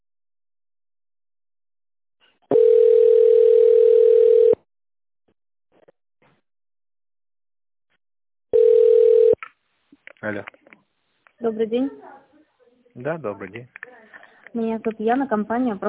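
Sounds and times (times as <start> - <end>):
long telephone beeps while a call is being transferred: 2.5 - 4.6, 8.6 - 9.4
speech: 10.2 - 10.6, 11.4 - 12.2, 13.0 - 13.9, 14.5 - 15.8.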